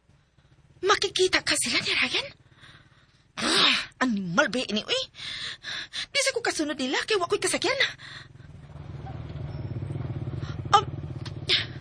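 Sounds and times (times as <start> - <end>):
motorcycle engine driving past: 0.0 - 3.3, 7.3 - 11.7
speech: 0.8 - 2.4, 3.5 - 8.3.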